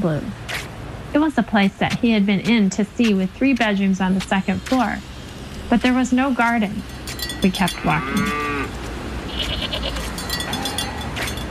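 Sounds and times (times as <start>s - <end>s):
speech: 0.0s - 0.4s, 1.1s - 5.1s, 5.7s - 8.5s
steady outdoor rumble: 0.0s - 11.4s
goat bleating while crossing a road between houses: 9.3s - 11.0s.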